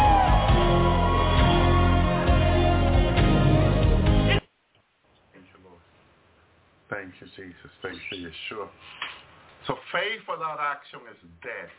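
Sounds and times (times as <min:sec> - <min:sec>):
audience at a worship service screaming and whooping: 0:00.0 - 0:03.3
speech: 0:07.1 - 0:11.7.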